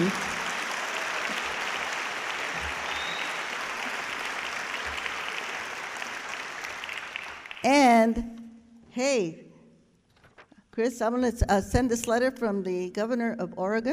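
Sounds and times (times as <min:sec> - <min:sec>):
audience applause: 0:00.0 - 0:07.6
speech: 0:07.7 - 0:08.4, 0:09.0 - 0:09.4, 0:10.8 - 0:13.9.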